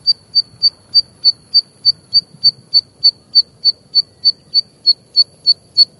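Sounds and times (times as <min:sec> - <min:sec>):
zitting cisticola brunniceps calling single ticks in Japan: 0:00.0 - 0:05.9.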